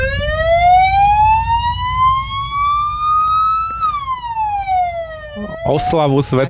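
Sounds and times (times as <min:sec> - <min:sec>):
fire engine siren wailing at a St. Florian celebration: 0:00.0 - 0:06.1
speech: 0:05.7 - 0:06.4.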